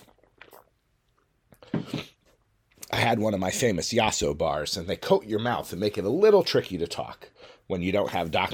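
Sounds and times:
gulp and swallow: 0.0 - 2.9
person sipping water: 0.0 - 2.9
speech: 3.1 - 8.5.

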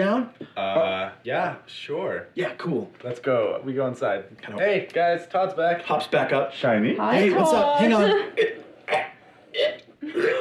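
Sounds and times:
speech: 0.0 - 10.3
voice mimicking retching up a big signet ring: 8.4 - 10.3.

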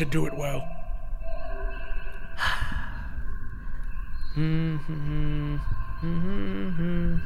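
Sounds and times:
faint tonal drone: 0.0 - 7.2
person humming a tune in low notes: 4.4 - 7.2.

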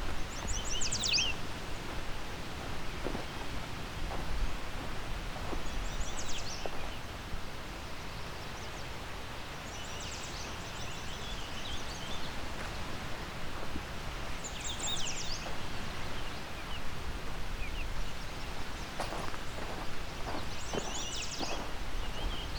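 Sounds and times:
yellow warbler song phrases: 0.0 - 22.5.

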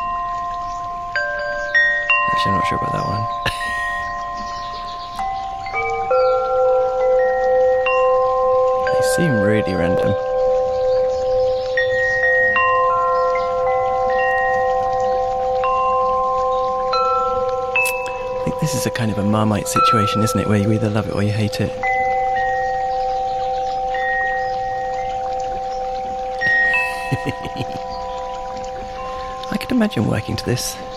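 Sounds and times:
babbling brook: 0.0 - 30.9
wind chimes ringing: 0.0 - 30.9
speech: 2.4 - 3.8, 9.0 - 10.3, 18.6 - 21.9, 27.1 - 27.6, 29.8 - 30.9
laughter: 26.8 - 27.8.

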